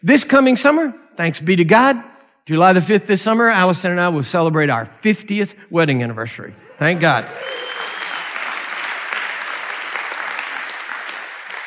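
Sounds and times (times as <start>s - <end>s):
speech: 0.0s - 7.6s
audience applause: 6.7s - 11.6s.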